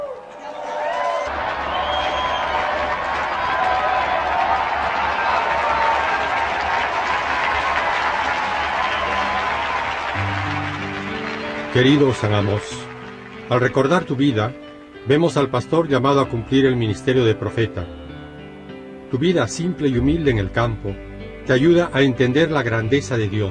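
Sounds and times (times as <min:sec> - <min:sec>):
audience applause in honour of a saint: 0:00.0 - 0:14.3
speech: 0:11.8 - 0:12.9, 0:13.5 - 0:18.0, 0:19.1 - 0:23.4.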